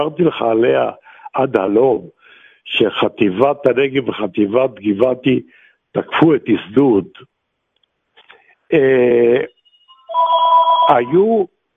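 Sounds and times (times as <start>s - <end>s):
speech: 0.0s - 7.3s, 8.7s - 9.5s, 10.1s - 11.5s
telephone ringing in loud electronic bursts: 9.4s - 11.3s.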